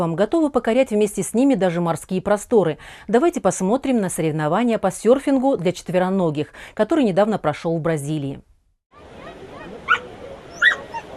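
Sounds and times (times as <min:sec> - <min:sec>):
speech: 0:00.0 - 0:08.5
dogs yelping at a dog surfing competition in Rio de Janeiro: 0:09.0 - 0:11.1.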